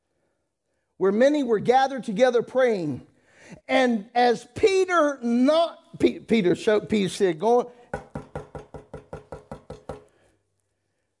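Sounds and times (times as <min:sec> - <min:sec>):
speech: 0:01.0 - 0:08.0
sharp knocks on the wooden door of a gate: 0:07.9 - 0:10.1.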